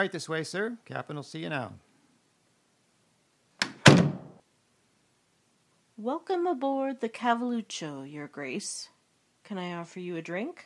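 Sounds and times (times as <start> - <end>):
speech: 0.0 - 1.9, 6.0 - 8.9, 9.5 - 10.6
ship door swinging shut: 3.6 - 4.4.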